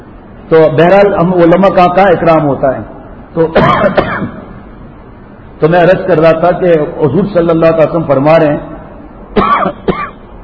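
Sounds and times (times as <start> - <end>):
low steady hum: 0.0 - 10.4
speech: 0.5 - 4.4, 5.6 - 8.7, 9.3 - 10.0
person coughing during a religious lecture: 3.6 - 4.4, 9.4 - 10.2.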